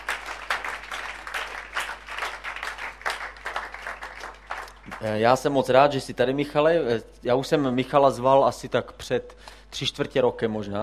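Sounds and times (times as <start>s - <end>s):
audience applauding to welcome a guest: 0.0s - 5.4s
speech: 5.0s - 10.8s.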